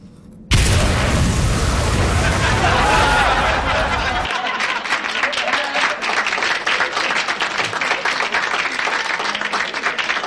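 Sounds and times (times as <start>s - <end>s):
huge loud explosion with deep rumbling boom: 0.5s - 4.3s
laughter: 2.0s - 10.1s.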